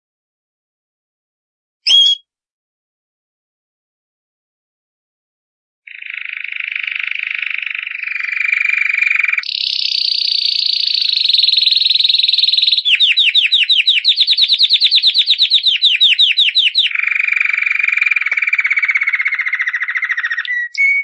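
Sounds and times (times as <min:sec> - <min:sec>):
champion canary singing a long rapid trill: 0:01.8 - 0:02.2, 0:05.9 - 0:21.0.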